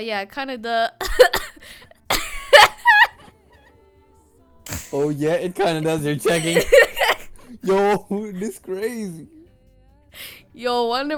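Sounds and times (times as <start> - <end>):
speech: 0.0 - 1.8, 4.9 - 6.9, 7.5 - 9.4, 10.6 - 11.1
deliberate forced coughs: 1.0 - 3.2, 4.7 - 8.0
laugh-like voiced sound: 2.1 - 3.3, 4.7 - 8.6.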